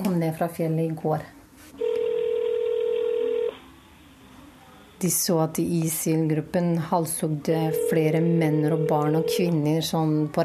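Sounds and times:
speech: 0.3 - 1.9, 5.0 - 10.4
steady mid-pitched telephone tone while a call is placed: 1.8 - 3.6, 7.6 - 9.9.

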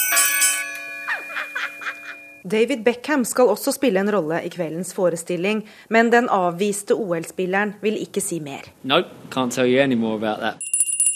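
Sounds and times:
bells ringing in the 2012 Olympics: 0.0 - 2.4, 10.6 - 11.1
speech: 2.4 - 10.7.

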